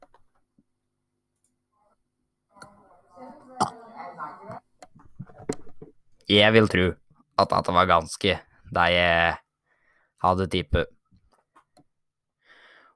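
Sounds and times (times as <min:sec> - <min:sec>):
small feeble croaky burp: 0:02.6 - 0:04.6
shorter gurgly belch: 0:03.4 - 0:04.6
speech: 0:06.3 - 0:09.4, 0:10.2 - 0:11.0.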